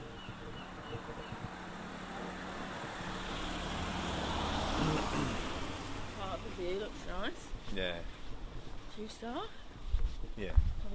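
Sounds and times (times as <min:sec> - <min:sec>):
car passing on the road: 0:00.0 - 0:08.7
speech: 0:06.6 - 0:08.2, 0:09.0 - 0:09.6, 0:10.4 - 0:10.9.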